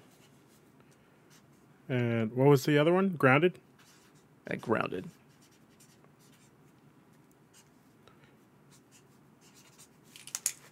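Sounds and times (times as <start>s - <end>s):
speech: 1.9s - 3.7s, 4.5s - 5.2s
handwriting with a pen: 3.8s - 4.2s, 5.1s - 6.6s, 8.7s - 10.0s.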